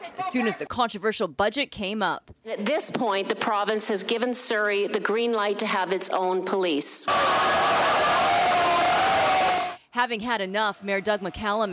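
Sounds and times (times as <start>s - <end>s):
speech: 0.2s - 9.0s, 10.0s - 11.7s
crowd of many voices shouting and heckling at a council meeting: 7.1s - 9.8s
scattered cheers at a council meeting: 7.1s - 9.8s.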